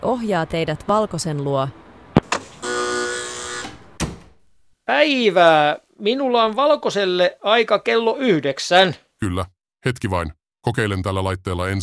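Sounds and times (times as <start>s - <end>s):
speech: 0.1s - 1.8s, 4.9s - 11.8s
door clunk as it swings: 2.1s - 4.5s
electric door lock clicks at a doctor's reception: 2.2s - 4.5s.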